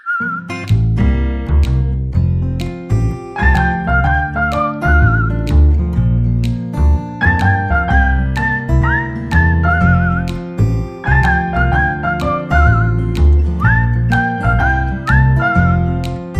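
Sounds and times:
acoustic guitar: 0.2 - 16.3
double bass melody: 0.2 - 16.3.

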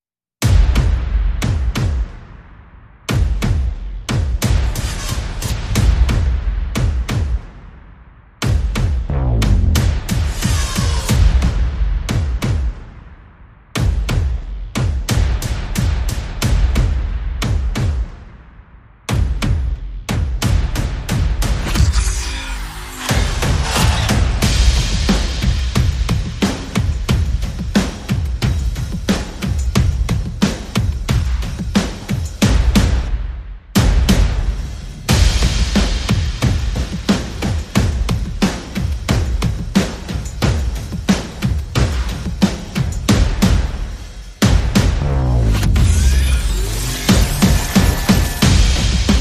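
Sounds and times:
percussion: 0.4 - 49.1
sound effects: 9.1 - 10.7, 21.6 - 24.2, 44.8 - 49.1.

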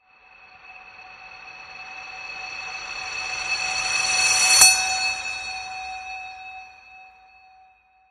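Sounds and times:
reversed magic cheer bell: 0.8 - 7.4.

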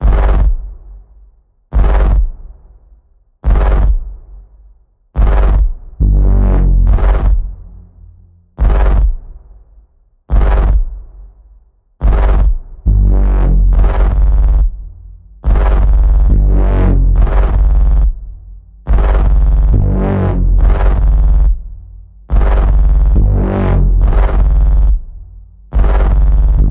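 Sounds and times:
evil warping bass pulse in the key of G: 1.8 - 2.3, 3.4 - 4.1, 5.2 - 9.6, 10.3 - 11.1, 12.0 - 26.6.

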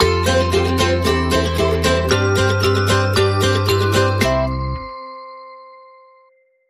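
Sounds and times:
upbeat acoustic Christmas music sting without drums: 0.0 - 5.1.

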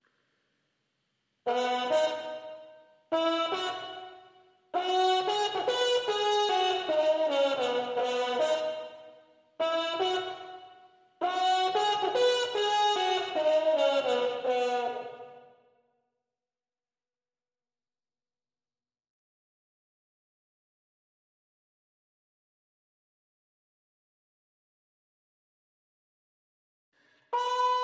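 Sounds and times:
clean trumpets: 1.5 - 15.5, 27.3 - 27.8.

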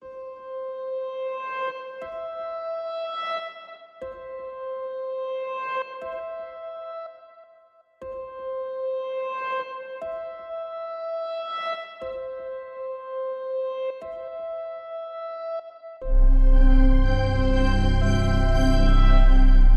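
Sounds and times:
divine ambient drone: 16.0 - 19.7.

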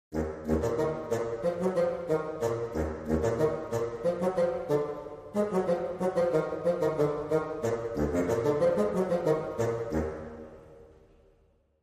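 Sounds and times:
dramedy woodwind sting: 0.2 - 10.1.

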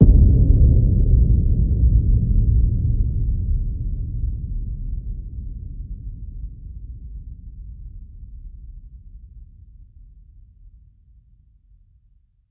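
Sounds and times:
low drumfire hit: 0.0 - 3.9.

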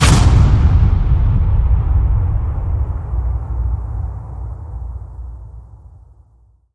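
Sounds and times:
big strong hammer hit: 0.0 - 6.2.

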